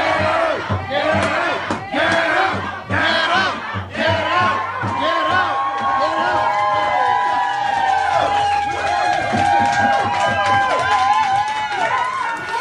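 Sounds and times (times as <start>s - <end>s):
large indoor crowd shouting and chanting angrily at arriving inspectors in a restaurant: 0.0s - 12.6s.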